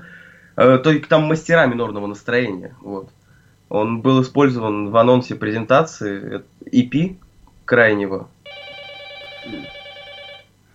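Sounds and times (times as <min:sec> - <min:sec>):
speech: 0:00.6 - 0:08.4
telephone ringing with buzzy electronic tone: 0:08.4 - 0:10.5.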